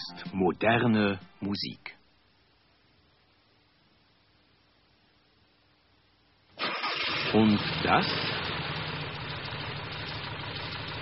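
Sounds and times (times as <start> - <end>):
speech: 0.3 - 2.0, 7.3 - 8.3
Volkswagen car engine idling: 6.7 - 10.9.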